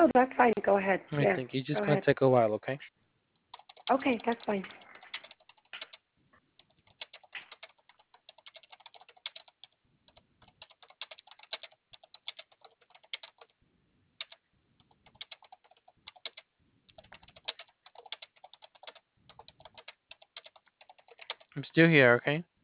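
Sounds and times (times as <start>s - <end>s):
speech: 0.0s - 3.0s, 3.9s - 4.8s, 21.7s - 22.5s
keyboard typing: 3.5s - 13.6s, 14.2s - 21.6s.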